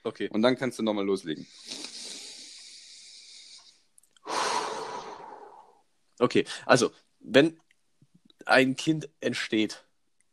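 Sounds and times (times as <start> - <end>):
speech: 0.0 - 1.9, 6.2 - 7.6, 8.4 - 9.9
person breathing slowly: 1.5 - 5.9.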